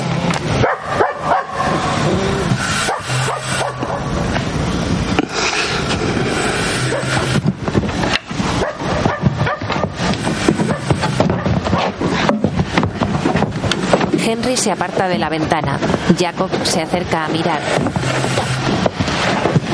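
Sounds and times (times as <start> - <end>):
train rumbling and clattering on the tracks: 0.0 - 19.7
dog barking between railway tracks at night: 0.6 - 1.8, 2.8 - 4.1, 6.8 - 7.3, 8.6 - 10.0, 10.6 - 12.0
speech: 14.5 - 18.5.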